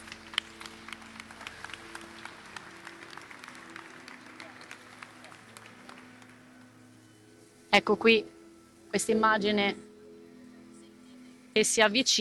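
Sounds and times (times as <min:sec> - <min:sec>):
crowd applauding inside a cathedral: 0:00.0 - 0:07.0
low murmur of voices: 0:00.0 - 0:07.8
speech: 0:07.8 - 0:08.3, 0:08.9 - 0:09.8, 0:11.6 - 0:12.1.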